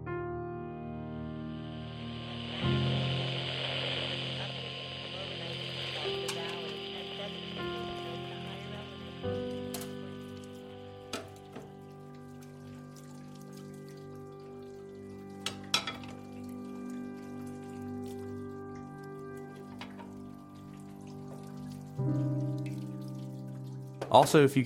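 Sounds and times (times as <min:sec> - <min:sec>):
low hum: 0:00.0 - 0:23.4
running water splashing while dishes are washed: 0:01.8 - 0:24.6
dishes clinking and clattering: 0:15.5 - 0:16.2
speech: 0:24.1 - 0:24.6.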